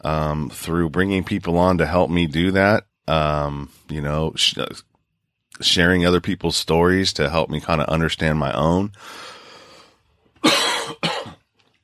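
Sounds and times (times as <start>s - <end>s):
speech: 0.0s - 4.9s, 5.6s - 9.4s
person coughing: 10.4s - 11.5s.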